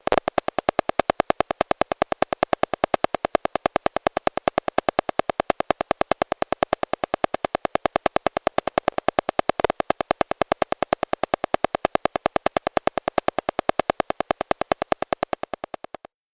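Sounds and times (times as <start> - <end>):
WiFi router: 0.0 - 16.0.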